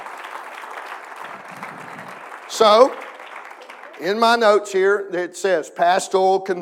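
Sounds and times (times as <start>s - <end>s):
crowd clapping: 0.0s - 6.2s
speech: 2.5s - 3.0s, 4.0s - 6.6s.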